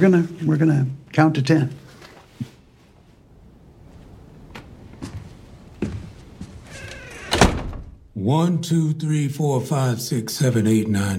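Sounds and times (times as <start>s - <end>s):
speech: 0.0s - 1.8s, 8.2s - 11.1s
shuffling movements: 1.7s - 7.0s
door pulled shut: 6.6s - 8.1s.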